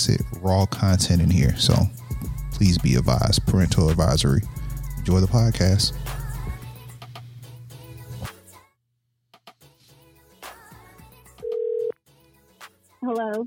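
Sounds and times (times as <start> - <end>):
speech: 0.0 - 2.0, 2.6 - 6.2
held tone and warbling telephone ring: 11.4 - 11.9
low steady telephone dial tone: 11.4 - 12.0.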